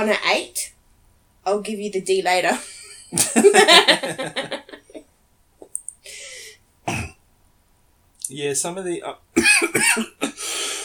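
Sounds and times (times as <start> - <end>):
speech: 0.0 - 0.7, 1.4 - 4.6, 8.3 - 10.3
laughter: 3.1 - 5.0
raspy breathy exhale: 6.0 - 6.6, 10.4 - 10.8
harsh coughing: 6.9 - 7.2, 9.4 - 10.8.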